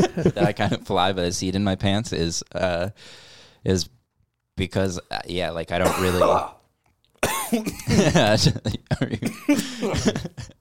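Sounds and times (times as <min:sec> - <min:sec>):
speech: 0:00.1 - 0:04.0, 0:04.6 - 0:06.6, 0:07.2 - 0:10.5
person coughing harshly and hacking: 0:05.8 - 0:06.6, 0:07.2 - 0:10.5.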